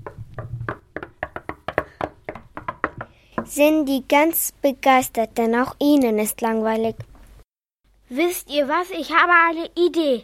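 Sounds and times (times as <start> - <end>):
knocking on the door of an earth burrow: 0.0 - 3.6
speech: 3.5 - 7.1, 8.1 - 10.2.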